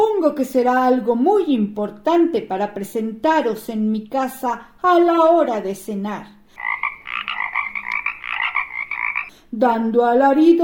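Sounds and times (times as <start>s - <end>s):
speech: 0.2s - 6.4s, 9.5s - 10.6s
frogs croaking in a chorus: 6.5s - 9.3s.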